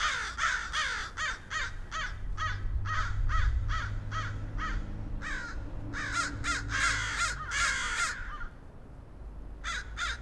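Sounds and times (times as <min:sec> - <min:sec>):
crows cawing: 0:00.0 - 0:08.6, 0:09.6 - 0:10.1.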